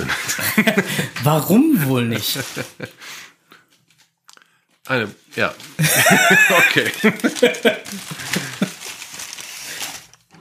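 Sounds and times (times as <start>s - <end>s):
laughter: 0.0s - 1.2s, 1.8s - 3.0s, 5.8s - 8.9s
speech: 0.3s - 3.2s, 4.9s - 8.5s
paper bakery bag crinkling and rustling as it is opened: 5.3s - 10.3s.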